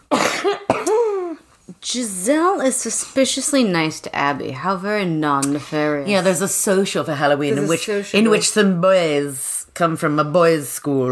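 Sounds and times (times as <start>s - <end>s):
person coughing harshly with groaning tail: 0.0s - 1.4s
speech: 1.8s - 11.1s.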